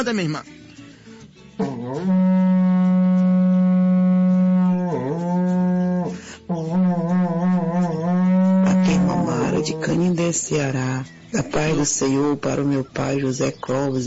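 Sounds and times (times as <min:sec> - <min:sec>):
speech: 0:00.0 - 0:00.6, 0:01.9 - 0:02.4, 0:09.6 - 0:14.0
berrante cattle horn blown: 0:01.6 - 0:10.0.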